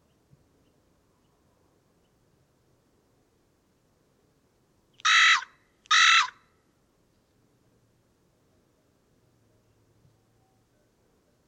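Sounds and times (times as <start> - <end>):
Carrion crow Corvus corone cawing: 5.0 - 6.4.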